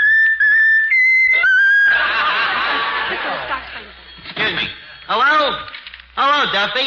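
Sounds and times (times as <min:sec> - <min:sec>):
pet bird whistling a tune: 0:00.0 - 0:01.9
laughter: 0:01.4 - 0:04.7
speech: 0:06.5 - 0:06.8.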